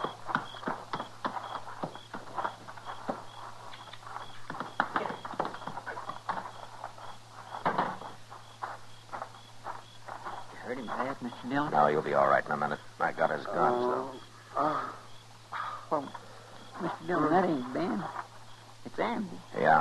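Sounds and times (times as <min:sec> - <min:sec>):
horse hooves clip-clopping at a slow walk as the horse is led inside: 0:00.0 - 0:11.7
speech: 0:11.5 - 0:15.0, 0:15.9 - 0:16.2, 0:16.8 - 0:18.2, 0:18.9 - 0:19.7.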